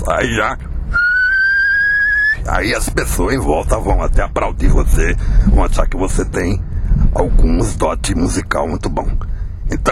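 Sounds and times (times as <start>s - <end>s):
speech: 0.1s - 0.7s, 2.5s - 9.9s
person whistling a steady high note: 0.9s - 2.4s.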